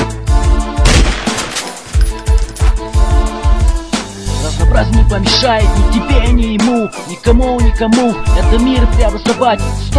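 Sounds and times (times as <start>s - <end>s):
steady musical backdrop: 0.0s - 9.9s
gunshots: 0.8s - 1.9s
speech: 5.1s - 9.9s.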